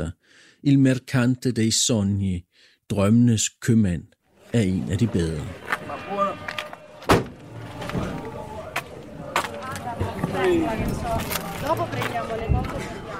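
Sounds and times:
speech: 0.0s - 7.2s
people moving around: 4.4s - 13.1s
car doors opening and shutting: 7.0s - 8.3s.

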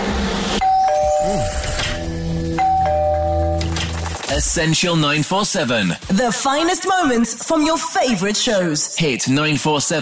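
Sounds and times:
two-tone ding-dong doorbell chime: 0.6s - 3.7s
speech: 4.4s - 10.0s.

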